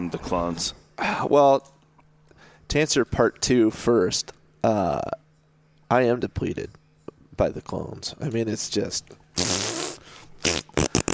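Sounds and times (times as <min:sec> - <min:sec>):
speech: 0:00.1 - 0:01.8, 0:02.7 - 0:05.2, 0:05.9 - 0:06.8, 0:07.4 - 0:09.5
mouth-made fart noise raspberry: 0:09.4 - 0:11.1.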